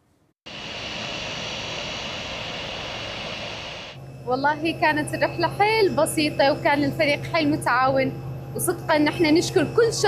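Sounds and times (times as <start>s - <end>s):
jet engine roar of an airplane landing at an airport: 0.5s - 4.0s
speech: 4.3s - 10.0s.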